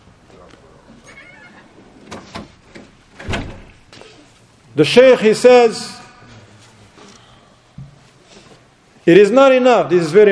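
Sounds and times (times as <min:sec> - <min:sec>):
quiet noise: 0:00.0 - 0:10.3
door squeak: 0:01.0 - 0:02.5
door rattling: 0:01.4 - 0:03.8
door thudding shut: 0:02.0 - 0:03.8
speech: 0:04.8 - 0:06.0, 0:09.1 - 0:10.3.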